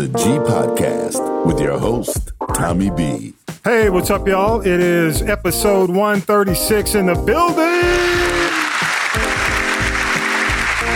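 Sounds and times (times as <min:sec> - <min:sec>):
speech: 0:00.0 - 0:08.2
large crowd clapping and cheering: 0:07.6 - 0:10.9
rising whoops: 0:07.8 - 0:08.9.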